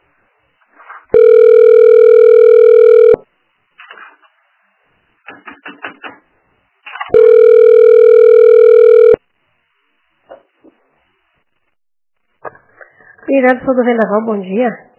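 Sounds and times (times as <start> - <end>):
telephone ringback tone: 1.1 - 3.2, 7.1 - 9.2
speech: 13.3 - 14.8.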